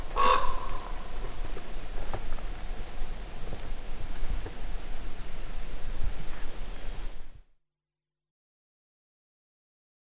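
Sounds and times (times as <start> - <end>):
common raven giving a short rough caw: 0.0 - 1.5
background rustle and hiss: 0.0 - 7.4.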